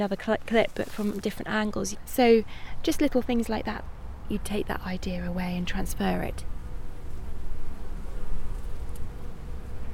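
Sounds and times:
speech: 0.0s - 6.5s
many honeybees buzzing at hives under an ash tree: 5.8s - 9.9s.

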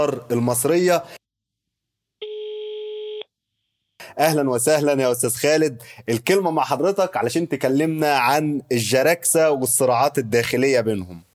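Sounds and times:
speech: 0.0s - 1.2s, 4.2s - 11.3s
telephone ring tone from a call to Kuwait: 2.2s - 3.3s.

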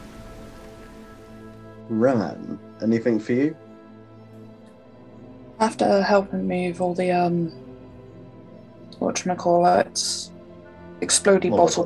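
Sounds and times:
steady rain: 0.0s - 3.0s
speech: 1.9s - 3.6s, 5.6s - 7.6s, 9.0s - 10.4s, 11.0s - 11.8s.

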